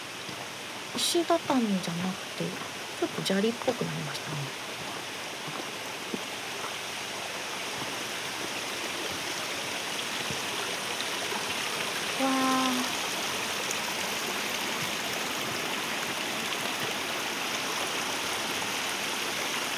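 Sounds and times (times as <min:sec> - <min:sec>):
mountain stream rushing: 0:00.0 - 0:19.7
speech: 0:01.0 - 0:04.7
person exclaiming softly: 0:12.2 - 0:12.9.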